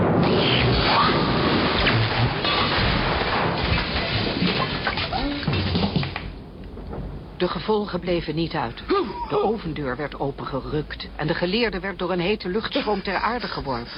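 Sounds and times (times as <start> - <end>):
thunderclap of lightning striking: 0.0 - 8.9
speech: 7.4 - 13.9.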